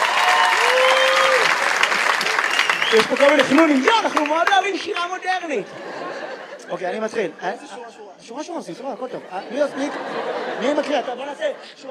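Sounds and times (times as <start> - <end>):
audience applauding at a modern poetry reading: 0.0 - 5.4
speech: 2.9 - 6.1, 6.7 - 11.8
laughter: 3.2 - 7.8, 8.8 - 11.8.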